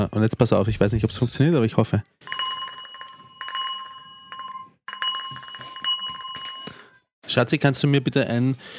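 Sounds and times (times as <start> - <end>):
speech: 0.0 - 2.4, 7.3 - 8.7
small hand bell being shaken: 2.2 - 7.0.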